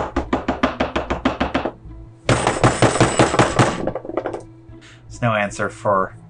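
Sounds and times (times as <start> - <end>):
forceful banging on the door of a sheriff's house in town: 0.0 - 4.5
speech: 5.2 - 6.2.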